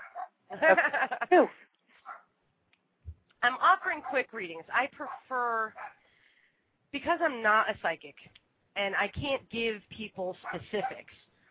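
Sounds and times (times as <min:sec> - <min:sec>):
dog barking: 0:00.0 - 0:00.4, 0:02.0 - 0:02.3, 0:05.1 - 0:06.0
laughter: 0:00.5 - 0:01.5
speech: 0:00.5 - 0:01.6, 0:03.9 - 0:06.0, 0:06.9 - 0:11.3.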